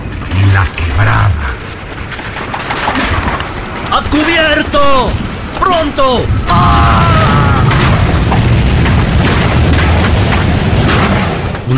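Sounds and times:
crackling debris: 0.0 - 11.7
speech: 4.2 - 6.8
powerful explosion boom: 6.2 - 11.7.

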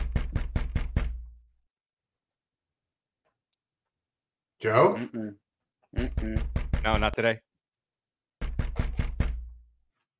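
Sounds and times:
knocking on a door or hard surface: 0.0 - 1.4, 6.0 - 7.2, 8.4 - 9.6
speech: 4.6 - 7.5.

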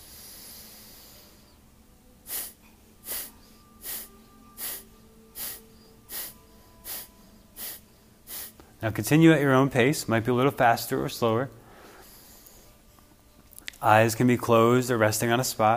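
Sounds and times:
forceful hissing exhales during hatha yoga breathing exercise: 0.0 - 1.5, 2.3 - 8.6
speech: 8.8 - 11.6, 13.8 - 15.7.

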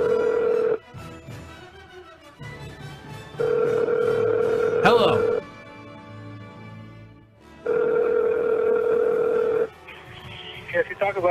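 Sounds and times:
electronic telephone ring tone: 0.0 - 0.8, 3.4 - 5.4, 7.6 - 9.7.

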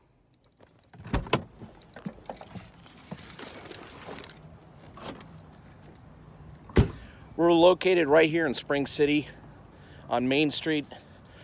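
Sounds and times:
keys jingling: 1.8 - 4.5
keys clacking against a lock: 2.1 - 4.5
speech: 7.4 - 9.4, 10.1 - 11.0.

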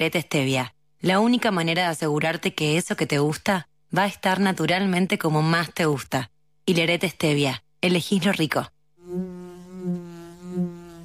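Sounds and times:
speech: 0.0 - 9.4
bee buzzing: 9.0 - 11.0.

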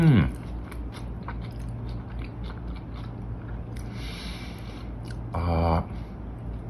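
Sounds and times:
crunchy biting and chewing of a spicy snack eaten by hand: 0.0 - 5.3.

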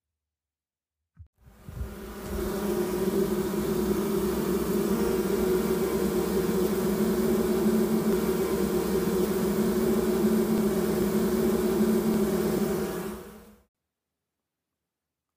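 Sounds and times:
agitated honeybees buzzing inside a hive: 1.5 - 13.7.

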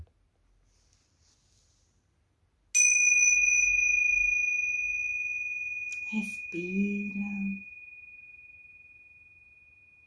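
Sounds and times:
Tibetan bell struck and resonating: 2.8 - 10.0
speech: 6.1 - 7.7.

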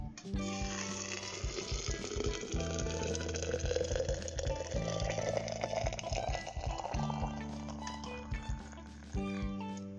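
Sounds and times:
hot water poured onto barley tea and black tea leaves: 0.4 - 9.1.

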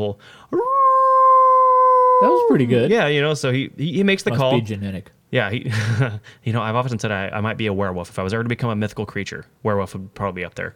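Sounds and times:
speech: 0.0 - 0.7, 2.2 - 10.7
man imitating a coyote howl: 0.5 - 2.8
laughter: 5.6 - 6.3.

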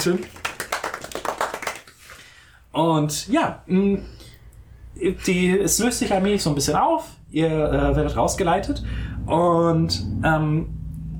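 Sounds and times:
speech: 0.0 - 0.4, 2.8 - 4.2, 5.0 - 10.8
hand clapping applause: 0.0 - 2.3.

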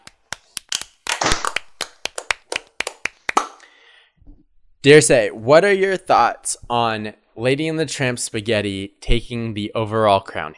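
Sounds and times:
hands clapping: 0.0 - 3.6
speech: 4.8 - 10.5.

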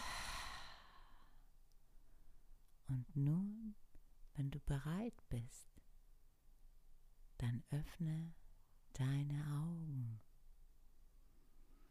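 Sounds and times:
soft sigh-like exhale through the mouth during a guided relaxation exercise: 0.0 - 1.3
faint breathing: 0.0 - 2.4
speech: 2.9 - 3.8, 4.4 - 5.8, 7.4 - 8.4, 9.0 - 10.3.

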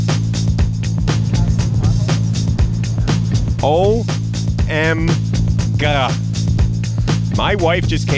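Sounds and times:
low engine rumble inside a moving car: 0.0 - 7.7
rising vocal sound: 0.8 - 6.6
speech: 3.6 - 6.3, 7.4 - 8.1.

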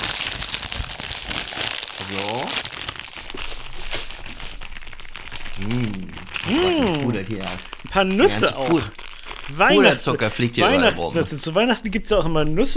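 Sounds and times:
plastic bag crinkling as pastry is taken out: 0.0 - 11.5
short voiced murmurs: 2.0 - 2.7, 5.6 - 7.6, 9.8 - 11.4
speech: 5.6 - 12.7.

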